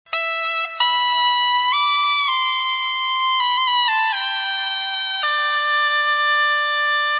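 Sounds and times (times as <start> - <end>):
dulzaina: 0.1 - 7.1.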